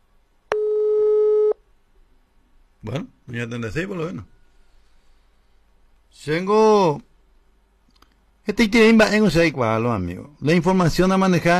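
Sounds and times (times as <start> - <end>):
steady electronic telephone busy tone during a phone call: 0.5 - 1.6
speech: 2.8 - 4.4, 6.2 - 7.1, 8.5 - 11.5.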